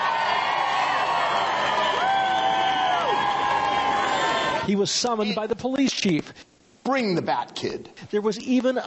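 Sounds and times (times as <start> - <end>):
high shouts: 0.0 - 4.7
large crowd in San Francisco cheering and whooping for a young boy: 0.0 - 4.7
speech: 4.7 - 8.8.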